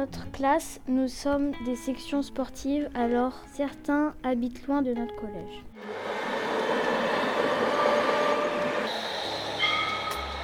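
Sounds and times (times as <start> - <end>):
speech: 0.0 - 6.1
tram-train rumbling along its tracks on a line to Nantes France: 5.8 - 10.4.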